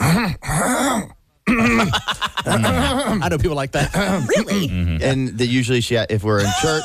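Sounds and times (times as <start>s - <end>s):
voice imitating throat clearing: 0.0s - 3.3s, 3.9s - 5.2s
speech: 1.8s - 6.8s.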